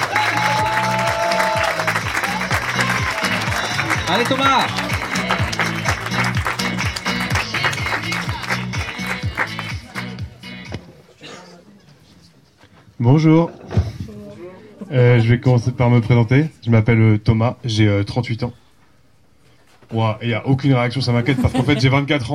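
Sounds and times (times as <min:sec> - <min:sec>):
shouted cheer: 0:00.0 - 0:05.9
large audience applause for a comedian: 0:00.0 - 0:10.2
pulsing music beat: 0:01.7 - 0:10.7
speech: 0:04.1 - 0:04.8, 0:13.0 - 0:13.6, 0:14.9 - 0:18.6, 0:19.9 - 0:22.3
laughter: 0:21.1 - 0:22.2.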